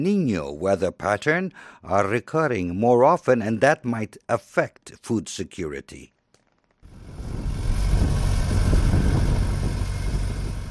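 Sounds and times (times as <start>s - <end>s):
speech: 0.0s - 6.2s
tractor tilling land at a farm north of Harare: 6.5s - 10.7s.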